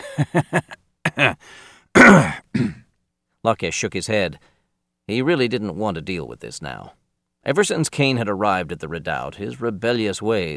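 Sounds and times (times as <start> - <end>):
person giving a loud deliberate cough: 0.0 - 1.4, 2.0 - 2.9
stifled chuckles: 0.0 - 1.4
speech: 0.2 - 2.4, 3.4 - 4.5, 5.1 - 10.5
short throat-clearing: 1.0 - 1.4, 2.0 - 2.9.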